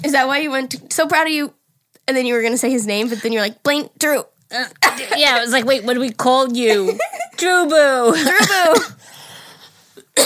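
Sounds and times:
speech: 0.1 - 9.1
loud cough: 4.8 - 5.2, 8.2 - 9.0.

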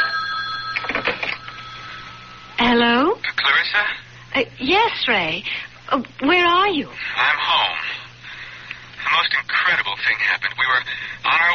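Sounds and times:
telephone ringing: 0.0 - 3.0
speech: 2.7 - 7.8, 9.1 - 11.5.

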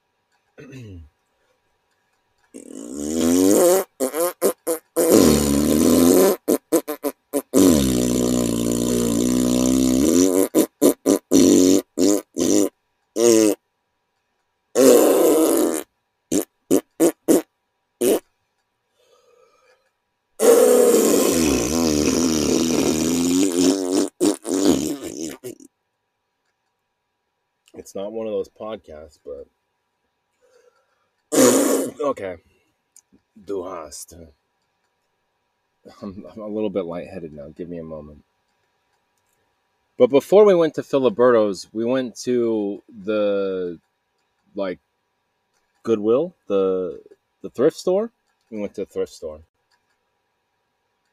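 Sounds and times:
speech: 0.6 - 1.1, 28.8 - 29.6, 32.1 - 32.5, 33.4 - 34.4, 35.8 - 38.3, 40.0 - 43.9, 44.5 - 44.9, 45.8 - 49.5
voice imitating farts with sputtering blasts: 2.6 - 13.6, 14.8 - 18.3, 20.4 - 25.7, 31.3 - 32.1.

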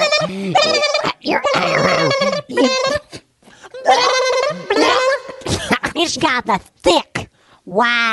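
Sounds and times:
person vocally imitating a blue jay gulping down a worm: 0.0 - 5.9
speech: 6.1 - 7.1, 7.7 - 8.1.

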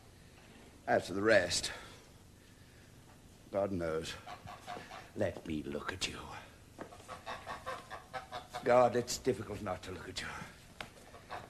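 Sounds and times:
steady hiss: 0.0 - 11.4
speech: 0.9 - 1.8, 3.5 - 6.9, 8.6 - 10.6
geese honking: 7.0 - 8.9, 11.1 - 11.4.

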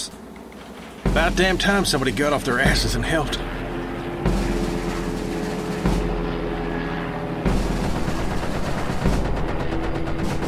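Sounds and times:
helicopter engines rumbling: 0.0 - 10.4
speech: 1.2 - 3.6
gunfire bursts: 4.2 - 6.5, 7.4 - 10.4.

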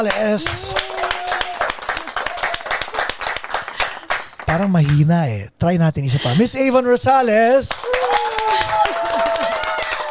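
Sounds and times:
speech: 0.0 - 0.9, 4.5 - 7.8
studio audience applauding: 0.0 - 5.1, 7.7 - 10.0.

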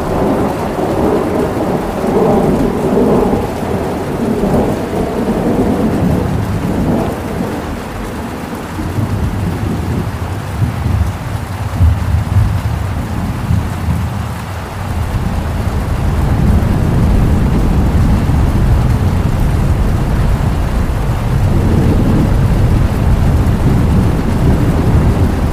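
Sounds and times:
deep rumble of thunder: 0.0 - 25.5
steady dense rain hiss: 0.0 - 25.5
river water: 14.6 - 25.5.

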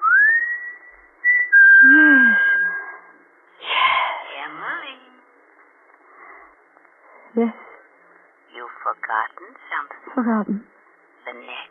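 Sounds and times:
man whistling a signal: 0.0 - 3.0
speech: 7.4 - 7.6, 8.9 - 10.7.

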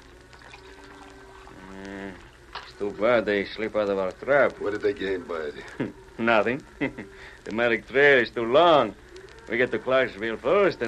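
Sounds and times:
coffee pouring into a cup: 0.0 - 5.3
speech: 2.8 - 10.8.

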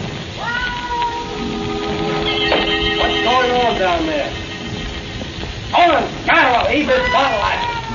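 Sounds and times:
steady hiss: 0.0 - 7.9
cat yowling: 0.3 - 5.0, 6.9 - 7.9.

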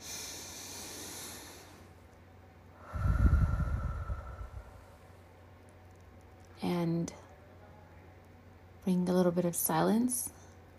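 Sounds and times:
deep breath: 0.0 - 1.9, 2.8 - 5.1
speech: 8.9 - 10.4.

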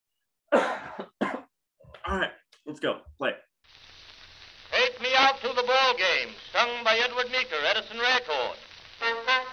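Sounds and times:
harsh coughs: 0.5 - 1.6
speech: 2.2 - 3.5, 5.2 - 9.4.

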